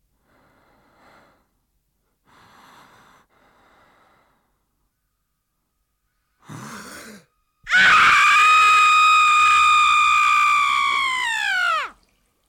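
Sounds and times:
male voice imitating a woman's childbirth scream: 0:07.7 - 0:12.0.

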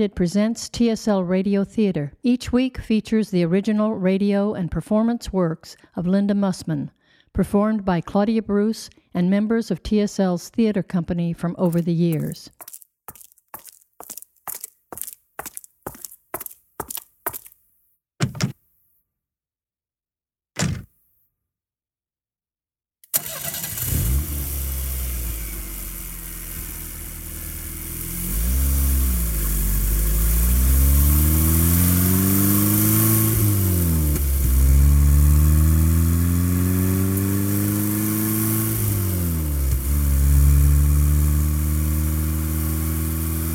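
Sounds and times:
speech: 0:00.0 - 0:12.8
car engine starting: 0:23.1 - 0:43.5
car accelerating away through several gear changes: 0:27.8 - 0:43.5.

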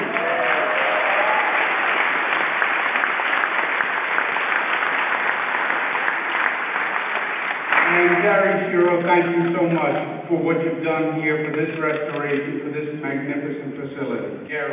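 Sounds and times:
large crowd applauding at an opera house in Hudson: 0:00.0 - 0:08.7
speech: 0:08.3 - 0:14.7.

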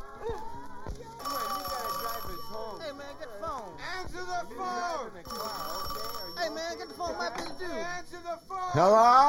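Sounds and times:
telephone ringing with shrill electronic tone: 0:01.2 - 0:08.1
speech: 0:07.0 - 0:09.2.

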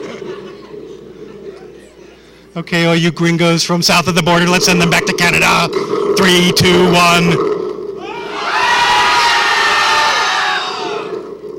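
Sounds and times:
speech: 0:02.6 - 0:07.5
large crowd screaming in unison: 0:08.0 - 0:11.4.

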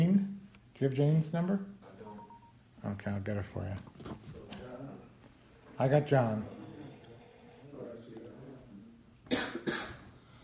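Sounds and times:
faint hum: 0:00.0 - 0:10.4
speech: 0:00.8 - 0:01.8, 0:02.8 - 0:04.2, 0:05.8 - 0:06.6
quiet murmur of voices: 0:04.3 - 0:09.3
dry cough: 0:09.3 - 0:10.1.

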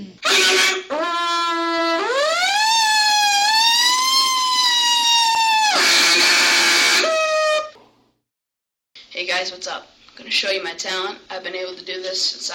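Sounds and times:
short noisy bursts: 0:00.2 - 0:01.0, 0:02.6 - 0:07.7
police siren effect with fast pursuit wail: 0:00.2 - 0:07.8
speech: 0:09.6 - 0:12.5.

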